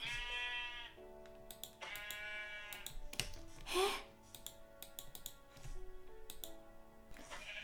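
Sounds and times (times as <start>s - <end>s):
video game sheep bleating while being hit: 0.1s - 1.0s, 1.8s - 2.8s
clicking taps of keys or a mouse: 1.2s - 3.4s, 4.3s - 5.6s, 6.2s - 6.6s.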